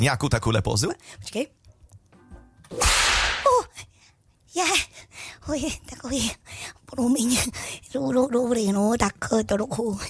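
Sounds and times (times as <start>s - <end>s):
speech: 0.0s - 1.6s, 2.7s - 2.9s, 4.6s - 10.0s
whip crack: 2.7s - 3.6s.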